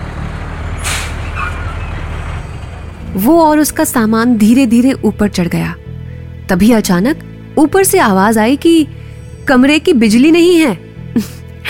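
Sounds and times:
truck engine rumbling and stopping outside a house: 0:00.0 - 0:11.6
truck air brakes hissing: 0:00.8 - 0:01.9
speech: 0:03.1 - 0:05.8, 0:06.5 - 0:11.4.

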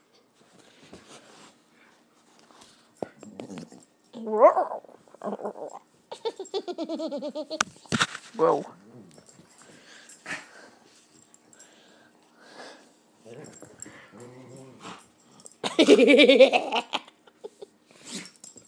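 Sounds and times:
speech: 0:04.2 - 0:05.8, 0:06.7 - 0:08.8, 0:16.0 - 0:16.9
dog sneezing loudly: 0:18.0 - 0:18.4.

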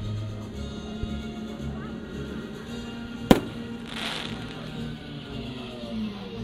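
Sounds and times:
outdoor noise: 0:00.0 - 0:06.4
faint voices: 0:00.2 - 0:06.4
explosion: 0:03.3 - 0:04.6.

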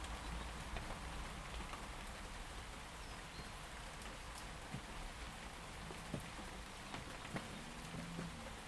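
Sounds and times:
steady gentle rain falling outdoors: 0:00.0 - 0:08.6.

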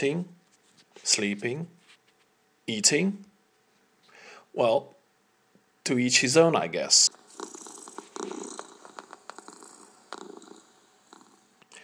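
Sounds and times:
speech: 0:00.0 - 0:00.4, 0:01.0 - 0:01.8, 0:02.7 - 0:03.3, 0:04.5 - 0:05.0, 0:05.8 - 0:07.2
cat purring: 0:07.0 - 0:11.6.

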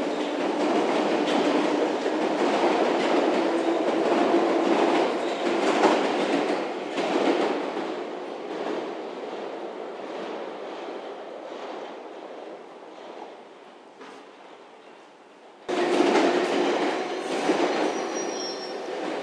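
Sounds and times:
train rolling through a station: 0:00.0 - 0:19.2
squealing, clattering train wheels: 0:17.1 - 0:19.2.

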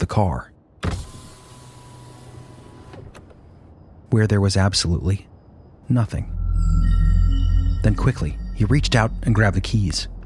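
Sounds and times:
speech: 0:00.0 - 0:00.5, 0:04.1 - 0:05.3, 0:05.9 - 0:07.0, 0:07.8 - 0:10.1
car electric window rolling down with motor whir: 0:00.8 - 0:03.3.

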